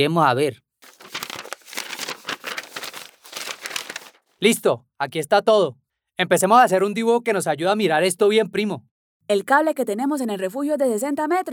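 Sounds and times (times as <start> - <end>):
speech: 0.0 - 0.6, 4.4 - 11.5
paper rustling and crinkling as paper and a pencil are brought: 0.8 - 4.3.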